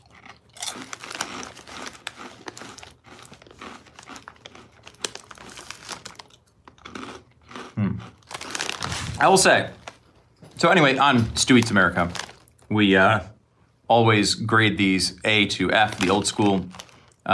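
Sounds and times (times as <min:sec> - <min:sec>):
crunching and chewing of crispy cinnamon corn snacks: 0:00.0 - 0:10.2, 0:10.8 - 0:12.7, 0:15.8 - 0:17.3
speech: 0:09.2 - 0:09.8, 0:10.6 - 0:13.3, 0:13.9 - 0:17.3.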